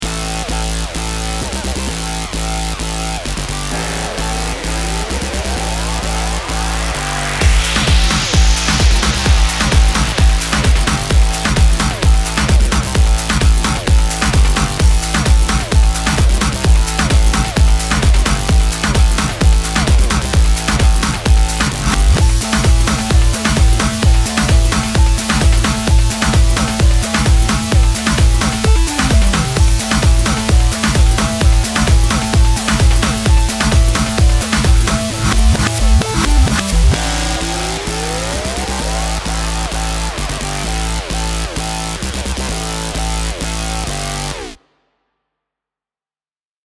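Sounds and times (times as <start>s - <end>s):
electronic background music: 0.0s - 44.6s.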